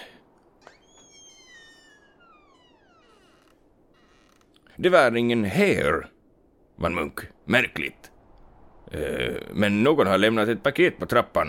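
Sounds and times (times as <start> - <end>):
door creaking open: 0.5 - 4.8
speech: 4.8 - 6.2, 6.8 - 8.1, 8.9 - 11.4.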